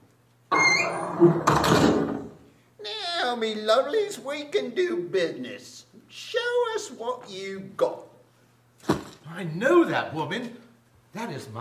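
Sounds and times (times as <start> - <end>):
shop door creaking on its hinges: 0.5 - 2.4
speech: 0.9 - 2.1, 3.3 - 8.1, 8.8 - 11.5.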